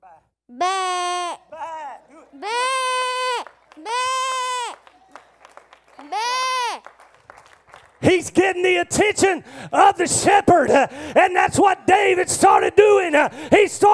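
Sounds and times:
man imitating a sheep bleating: 0.0s - 4.8s
speech: 8.1s - 13.9s.

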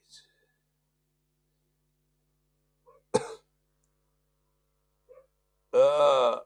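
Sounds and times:
person coughing with rough strained hacking: 3.2s - 3.5s.

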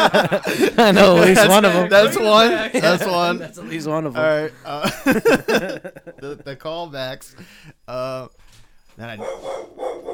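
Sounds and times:
laughter: 0.0s - 7.5s
speech: 0.1s - 8.4s, 9.0s - 10.1s
dog barking: 9.2s - 10.1s.

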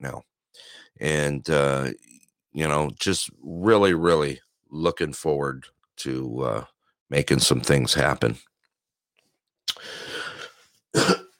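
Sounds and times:
speech: 0.0s - 8.5s, 9.8s - 10.1s
raspy throat clearing: 10.4s - 11.3s
sharp cough: 11.0s - 11.3s.

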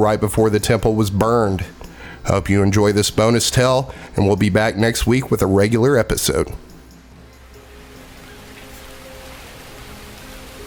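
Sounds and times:
speech: 0.0s - 6.7s
steady rain falling: 7.2s - 10.6s.

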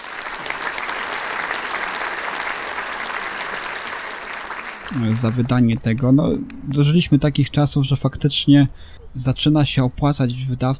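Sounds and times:
crowd applauding: 0.0s - 5.6s
speech: 4.9s - 10.7s.

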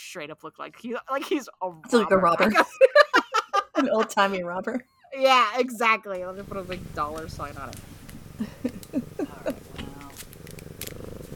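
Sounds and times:
speech: 0.1s - 3.1s, 3.8s - 9.0s
laughter: 1.2s - 4.8s, 8.4s - 10.0s
cat purring: 6.2s - 11.3s
cat rubbing against microphone, rustling and bumping: 6.4s - 11.3s.

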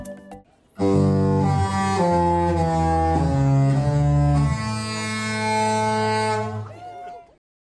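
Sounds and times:
loud deep ship horn blowing: 0.8s - 6.6s.

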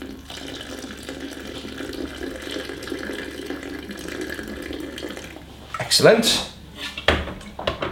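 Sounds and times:
just-boiled water pouring into a coffee brewer over washed coffee grounds: 0.0s - 6.0s
speech: 5.9s - 6.5s.

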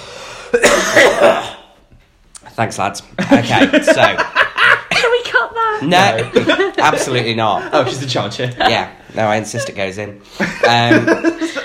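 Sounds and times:
person coughing forcefully: 0.5s - 1.8s
speech: 2.6s - 4.4s, 5.8s - 11.6s
laughter: 3.2s - 11.6s.

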